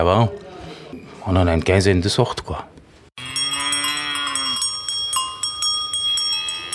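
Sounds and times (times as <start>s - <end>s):
speech: 0.0s - 0.4s, 1.2s - 2.7s
cowbells clanging: 3.2s - 6.7s.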